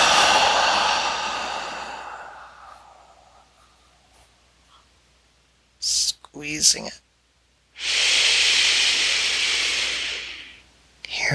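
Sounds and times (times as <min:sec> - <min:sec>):
deep slow inhaling breath during a guided breathing meditation: 0:00.0 - 0:04.0, 0:07.8 - 0:10.7
speech: 0:06.4 - 0:07.0.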